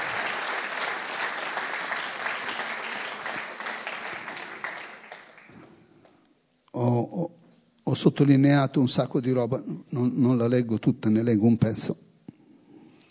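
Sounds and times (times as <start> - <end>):
audience applauding at a church service: 0.0 - 5.7
speech: 6.8 - 7.3, 7.9 - 12.0.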